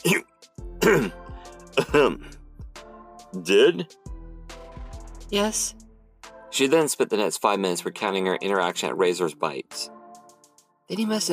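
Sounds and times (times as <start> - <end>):
speech: 0.0 - 1.2, 1.9 - 2.3, 3.3 - 4.1, 5.3 - 5.8, 6.5 - 10.0, 10.9 - 11.3
voice acting out severe harsh raspy coughing: 0.0 - 2.3.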